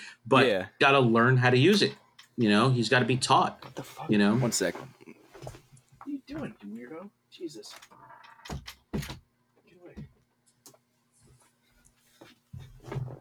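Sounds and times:
speech: 0.2s - 9.2s
door shoved open by a cat: 8.4s - 9.3s.

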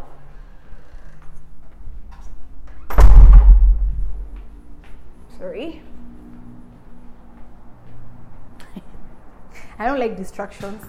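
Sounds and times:
quiet room hum: 0.0s - 9.8s
heavy door shut with a booming thud: 2.9s - 4.4s
speech: 5.4s - 5.9s, 9.8s - 10.8s.

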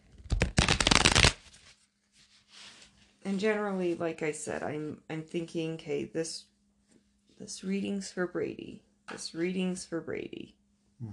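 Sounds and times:
shuffling a stiff new tarot deck: 0.1s - 1.7s
speech: 3.2s - 6.5s, 7.4s - 11.1s.

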